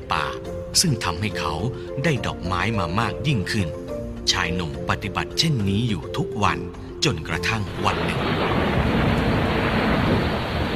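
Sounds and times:
speech: 0:00.1 - 0:08.7
dense rain-like hiss of a thunderstorm: 0:07.7 - 0:10.7
low rumble of a thunderstorm: 0:07.7 - 0:10.7.

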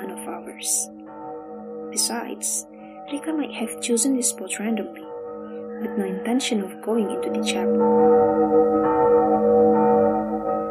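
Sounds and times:
speech: 0:00.6 - 0:00.9, 0:02.0 - 0:05.2, 0:05.8 - 0:10.6
school bell ringing for end of recess: 0:01.9 - 0:10.6.

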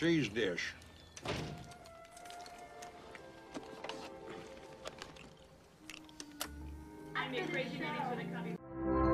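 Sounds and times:
speech: 0:00.0 - 0:01.8, 0:07.2 - 0:09.0
door closing with a solid thunk: 0:01.2 - 0:01.7.

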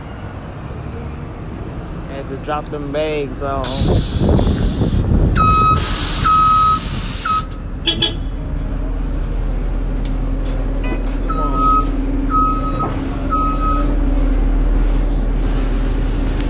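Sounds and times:
large Metro bus engine rumbling as it turns and pulls up: 0:00.0 - 0:16.4
speech: 0:02.2 - 0:04.6, 0:07.9 - 0:08.3
loud steady electronic beeps from a bus: 0:10.8 - 0:13.9.

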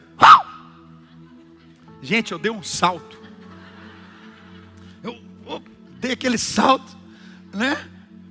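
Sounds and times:
person imitating a small dog's fierce bark: 0:00.2 - 0:00.6
speech: 0:02.0 - 0:03.2, 0:06.1 - 0:07.0, 0:07.6 - 0:07.9
laughter: 0:02.7 - 0:05.7.

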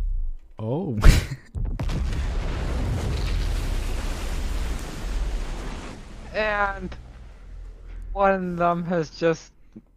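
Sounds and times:
speech: 0:00.6 - 0:01.6, 0:06.4 - 0:07.0, 0:08.2 - 0:09.9
missile explosion in a video game: 0:01.1 - 0:07.6.

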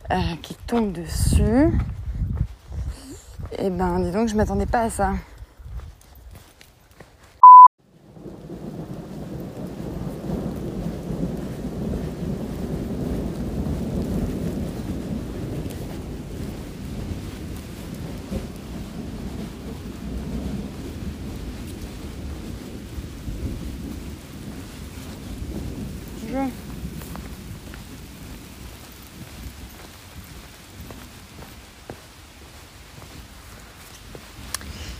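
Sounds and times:
speech: 0:00.1 - 0:02.0, 0:03.5 - 0:05.3
electronic beep: 0:07.4 - 0:07.7
outdoor rain falling: 0:07.9 - 0:34.9.

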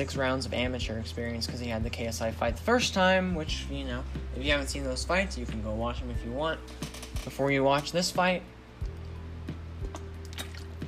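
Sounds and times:
speech: 0:00.0 - 0:08.6
low steady hum: 0:00.0 - 0:10.8
person gulping and swallowing water: 0:09.8 - 0:10.8.

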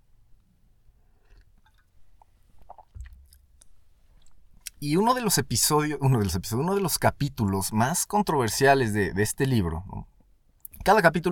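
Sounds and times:
person sipping coffee: 0:01.0 - 0:04.8
wet swallowing noises: 0:01.1 - 0:04.8
speech: 0:04.8 - 0:10.1, 0:10.8 - 0:11.3.

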